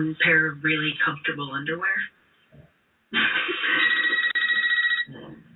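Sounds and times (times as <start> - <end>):
speech: 0.1 - 2.2
telephone ringing with an incoming call: 3.6 - 5.1.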